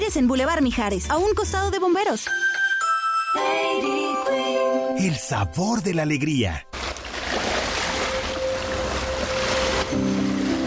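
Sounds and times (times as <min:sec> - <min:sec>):
speech: 0:00.1 - 0:02.6, 0:03.4 - 0:06.7
Sea of Cortez ocean waves breaking on shore: 0:06.8 - 0:10.6.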